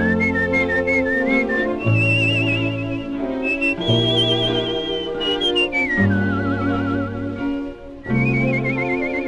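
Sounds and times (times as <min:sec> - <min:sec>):
singer whistling an improvised jazzy melody: 0:00.0 - 0:09.2.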